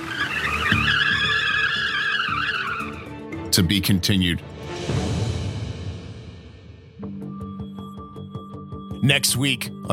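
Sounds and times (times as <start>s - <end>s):
car tires squealing in a grocery store parking lot: 0.0s - 3.2s
speech: 3.5s - 5.1s, 9.0s - 9.9s.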